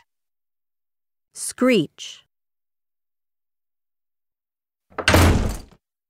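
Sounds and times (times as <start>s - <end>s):
speech: 1.6s - 2.3s
door slam: 4.9s - 5.8s.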